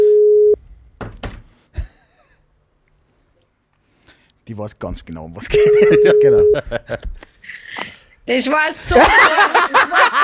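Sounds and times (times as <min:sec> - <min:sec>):
speech: 0:04.5 - 0:10.2
laughter: 0:05.4 - 0:07.9, 0:08.8 - 0:10.2
outgoing voice call ringback tone on a phone: 0:05.6 - 0:06.6.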